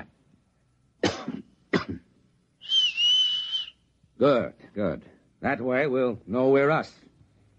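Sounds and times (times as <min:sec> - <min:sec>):
short sharp coughs: 0:01.0 - 0:02.1
sustained high-pitched human whistle: 0:02.6 - 0:03.8
speech: 0:04.2 - 0:07.1.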